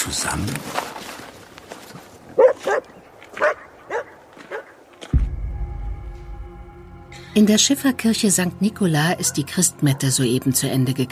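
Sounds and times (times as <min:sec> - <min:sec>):
speech: 0:00.1 - 0:01.0, 0:07.4 - 0:11.0
shaggy dog barking in cold snowy streets at night: 0:02.4 - 0:04.8
low steady droning hum: 0:05.2 - 0:09.8.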